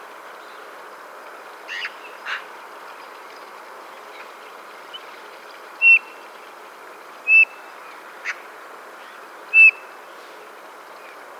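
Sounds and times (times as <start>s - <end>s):
steady background hiss: 0.0s - 11.3s
Eurasian bullfinch Pyrrhula pyrrhula giving soft piping whistles: 5.8s - 6.1s, 7.3s - 7.6s, 9.5s - 9.8s.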